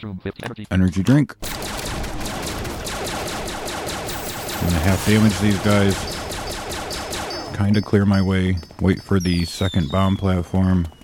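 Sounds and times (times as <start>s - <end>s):
speech: 0.0s - 1.6s, 4.6s - 6.1s, 7.5s - 11.0s
needle launcher firing rapid shots in a video game: 1.4s - 8.3s.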